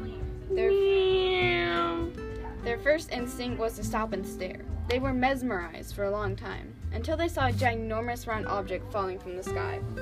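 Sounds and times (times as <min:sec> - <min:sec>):
long drawn-out cat meow: 0:00.6 - 0:02.2
speech: 0:02.8 - 0:10.0.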